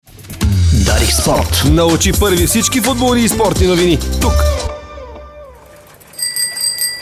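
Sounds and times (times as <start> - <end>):
steady mixed sound: 0.1 - 6.7
speech: 1.3 - 4.6
bicycle bell ringing: 5.5 - 7.0.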